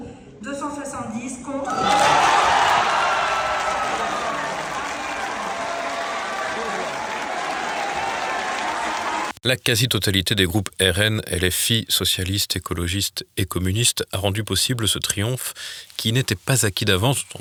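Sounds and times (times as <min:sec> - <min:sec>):
speech: 0:01.0 - 0:02.0, 0:09.4 - 0:17.3
large assembled crowd applauding in a parliament chamber: 0:01.7 - 0:09.4.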